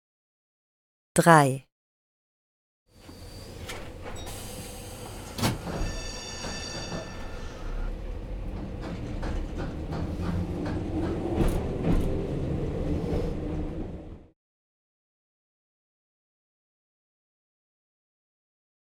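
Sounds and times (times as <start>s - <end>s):
speech: 1.2s - 1.7s
tram rumbling with low mechanical noise: 3.2s - 14.3s.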